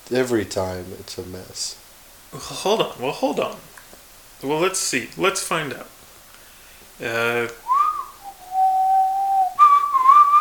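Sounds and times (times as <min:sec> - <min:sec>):
speech: 0:00.1 - 0:03.7, 0:04.4 - 0:06.0, 0:07.0 - 0:07.6
man whistling a cheerful tune: 0:07.7 - 0:10.3.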